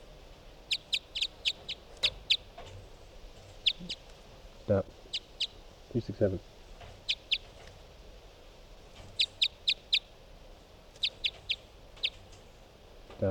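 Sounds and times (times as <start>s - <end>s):
faint steady hiss: 0.0s - 13.2s
bird chirping: 0.6s - 2.7s, 3.5s - 4.0s, 5.0s - 5.6s, 7.0s - 7.6s, 9.0s - 10.1s, 11.0s - 12.4s
speech: 4.7s - 5.0s, 5.9s - 6.5s.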